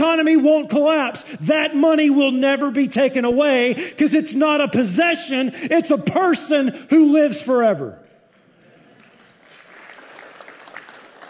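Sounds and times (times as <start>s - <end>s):
speech: 0.1s - 8.0s
audience applause: 8.9s - 11.2s.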